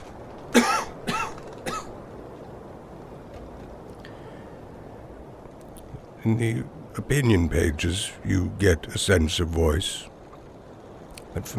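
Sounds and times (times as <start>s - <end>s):
person coughing: 0.5s - 1.9s
speech: 6.3s - 10.1s, 11.4s - 11.5s.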